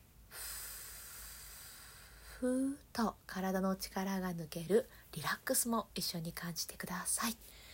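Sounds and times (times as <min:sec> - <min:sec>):
deep breath during a guided breathing exercise: 0:00.3 - 0:02.5, 0:07.5 - 0:07.7
speech: 0:02.4 - 0:07.7.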